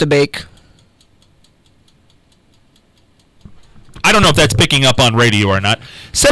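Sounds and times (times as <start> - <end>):
speech: 0.0 - 0.5, 4.1 - 6.3
rapid crisp ticking in the studio: 0.5 - 5.5
low steady rumble: 3.4 - 5.5.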